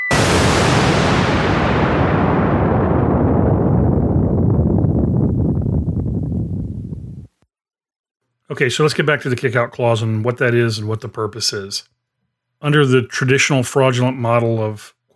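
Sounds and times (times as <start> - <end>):
explosion sound effect with long heavy rumble: 0.0 - 7.3
speech: 8.6 - 12.0, 12.6 - 15.0.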